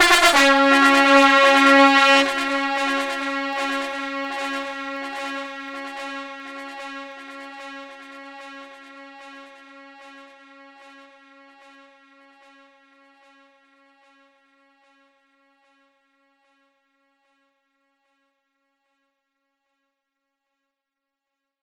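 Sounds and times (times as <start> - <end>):
horn blasts: 0.0 - 10.9.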